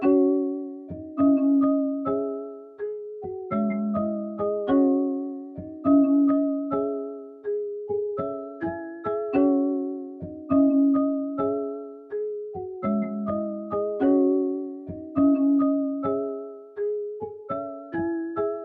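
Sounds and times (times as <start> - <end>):
West Coast marimba melody loop at 103 BPM in C sharp minor: 0.0 - 18.6.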